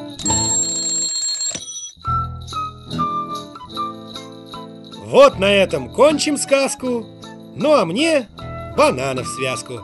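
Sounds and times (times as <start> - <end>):
bright metallic alarm clock ringing: 0.2 - 2.1
speech: 5.1 - 9.8.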